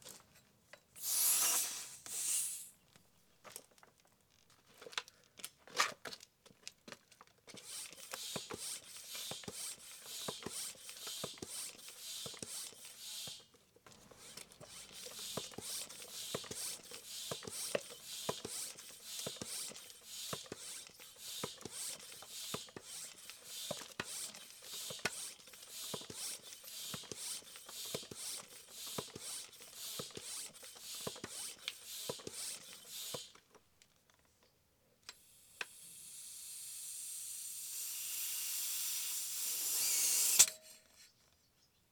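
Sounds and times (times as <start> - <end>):
hand car air pump pumping: 1.0 - 2.8, 7.5 - 33.5, 35.1 - 40.8.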